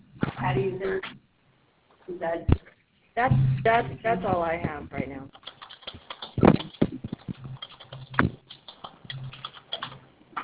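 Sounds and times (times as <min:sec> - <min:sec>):
faint hum: 0:00.0 - 0:10.4
speech: 0:00.6 - 0:01.2, 0:02.1 - 0:05.4
keyboard typing over an open phone line: 0:05.3 - 0:10.0.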